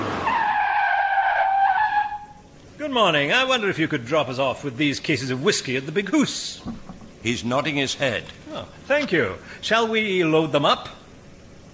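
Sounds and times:
vehicle tires squealing while skidding to a stop: 0.0 - 2.4
speech: 2.9 - 11.0.

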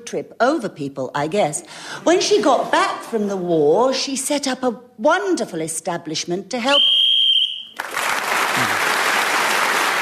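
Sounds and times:
speech: 0.1 - 7.0
shrill whistle blast blown to end a round: 6.7 - 7.8
loud applause from a large crowd: 7.8 - 9.9.

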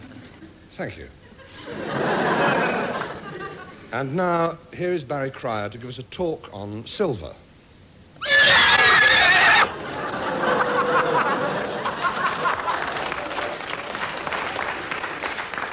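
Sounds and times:
speech: 0.8 - 2.1, 3.9 - 7.4
audience laughter: 1.2 - 3.9, 9.7 - 13.6
horse whinnying: 8.2 - 9.7
audience applause: 10.5 - 15.7.

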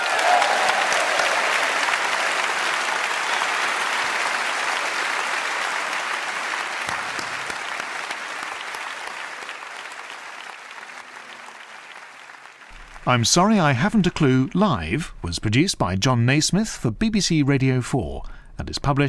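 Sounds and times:
large live audience applause at the end of a live show: 0.0 - 14.6
speech: 13.1 - 19.0.

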